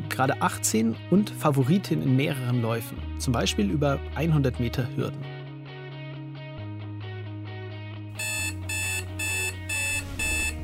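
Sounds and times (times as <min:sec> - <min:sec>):
speech: 0:00.2 - 0:05.3
alarm clock electronic beeping: 0:08.2 - 0:10.6.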